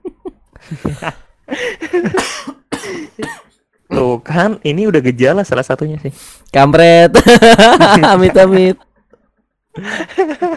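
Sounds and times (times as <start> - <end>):
laughter: 0.0 - 2.2, 7.1 - 10.5
speech: 0.6 - 1.2, 4.4 - 8.8, 9.8 - 10.5
person coughing from an itchy throat: 2.0 - 3.6.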